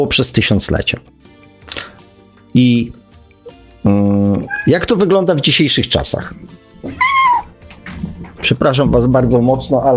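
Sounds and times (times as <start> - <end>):
speech: 0.0 - 1.8, 2.6 - 3.0, 3.8 - 7.0, 8.4 - 9.9
pet cat meowing: 4.4 - 4.9, 6.9 - 7.6.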